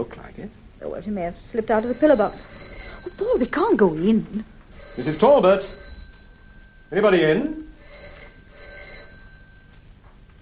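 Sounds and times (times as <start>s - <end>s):
speech: 0.0s - 2.6s, 3.2s - 5.8s, 6.9s - 7.6s
telephone bell ringing: 1.7s - 10.0s.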